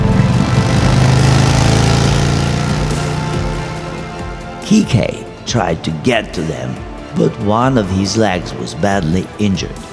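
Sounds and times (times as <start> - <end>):
motorcycle engine revving: 0.0 - 5.5
speech: 4.7 - 9.9.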